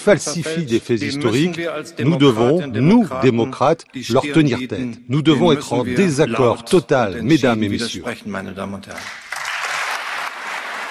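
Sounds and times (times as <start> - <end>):
speech: 0.0 - 9.2
audience applauding after a commemorative speech: 9.0 - 10.8.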